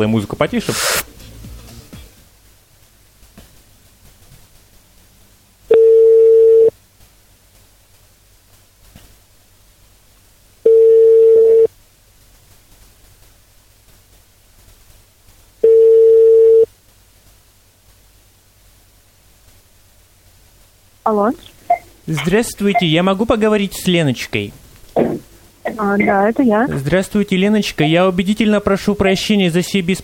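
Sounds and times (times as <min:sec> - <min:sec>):
speech: 0:00.0 - 0:01.2, 0:21.1 - 0:21.5, 0:22.1 - 0:24.6, 0:25.8 - 0:30.0
faint low hum: 0:00.0 - 0:30.0
telephone ringback tone while placing a phone call: 0:05.7 - 0:06.7, 0:10.7 - 0:11.7, 0:15.6 - 0:16.7.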